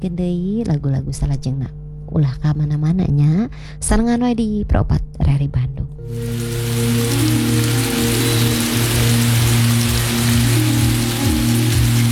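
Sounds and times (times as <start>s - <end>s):
speech: 0.0s - 7.6s
low droning tones: 0.0s - 12.1s
steady rain falling in humid weather: 6.1s - 12.1s.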